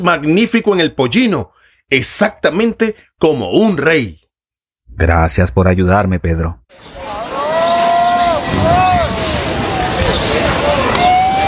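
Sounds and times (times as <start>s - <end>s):
speech: 0.0s - 4.2s, 4.9s - 7.0s
continuous crowd murmur: 6.7s - 11.4s
crowd voices calling out: 6.7s - 11.4s
shuffling of many people running along a road outdoors: 7.0s - 11.4s.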